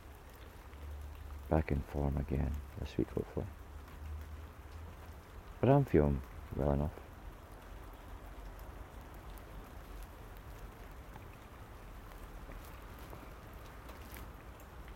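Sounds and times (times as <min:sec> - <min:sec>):
steady rain falling straight down: 0:00.0 - 0:14.9
speech: 0:01.5 - 0:03.6, 0:05.6 - 0:07.1.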